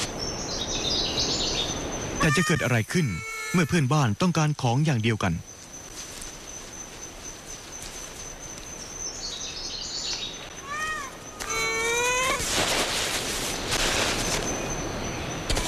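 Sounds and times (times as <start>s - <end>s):
steady hiss of noise: 0.0s - 15.6s
ring-tailed lemurs of a troop calling on Madagascar: 2.0s - 4.2s, 10.4s - 12.6s
speech: 2.2s - 5.5s.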